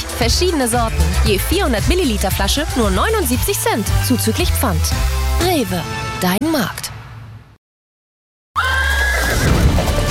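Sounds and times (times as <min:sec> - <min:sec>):
speech: 0:00.2 - 0:06.9
horse neighing: 0:08.6 - 0:09.6.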